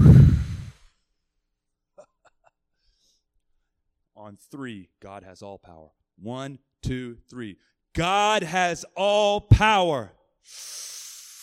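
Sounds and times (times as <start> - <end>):
group of people breathing out together during a prayer gathering: 0.0 - 0.8, 10.5 - 11.4
speech: 4.3 - 11.1.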